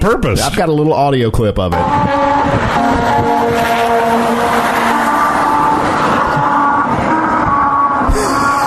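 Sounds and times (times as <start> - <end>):
speech: 0.0 - 5.0
car tires droning over musical rumble strips on a road: 1.6 - 8.6
continuous roar of a passing vehicle: 1.7 - 8.6.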